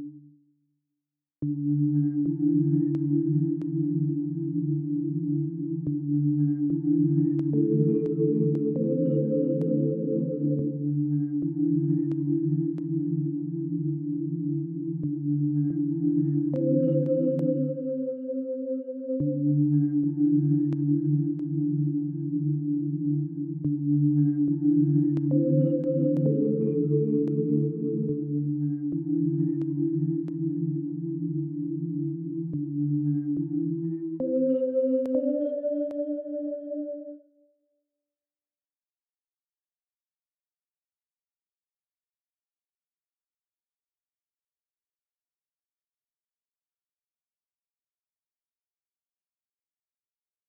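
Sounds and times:
synth pad: 1.5s - 37.2s.

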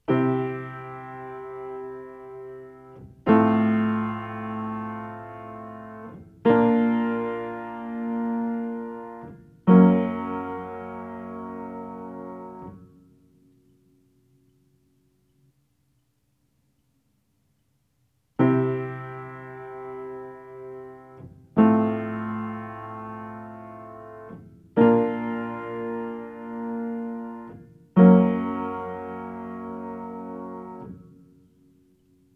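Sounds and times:
piano: 0.0s - 15.1s, 18.4s - 32.3s.

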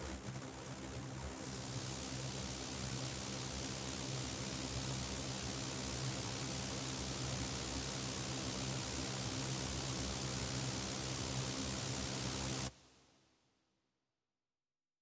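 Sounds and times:
ambient noise effect: 0.2s - 12.7s.

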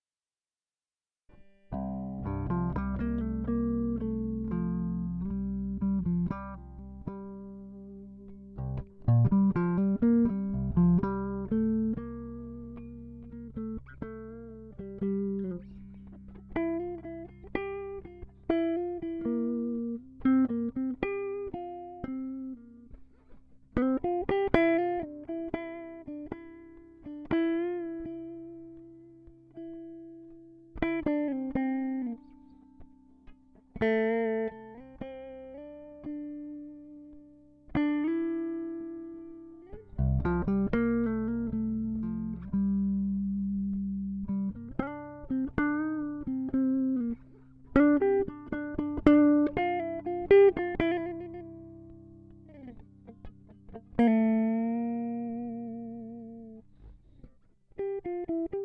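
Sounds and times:
improvised music: 1.3s - 58.6s.

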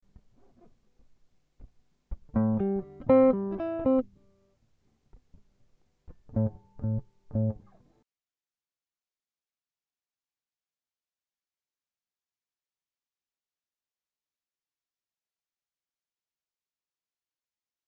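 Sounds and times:
guitar improvisation in A minor 6: 2.1s - 4.4s, 6.1s - 7.9s.

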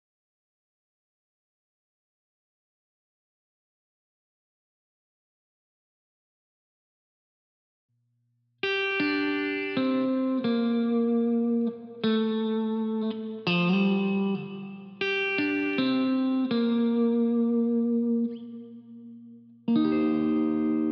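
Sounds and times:
guitar fills: 8.6s - 20.9s.

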